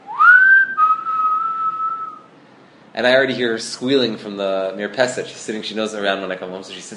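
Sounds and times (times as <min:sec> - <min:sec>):
person whistling a short personal signal call: 0:00.0 - 0:02.3
speech: 0:03.0 - 0:06.9.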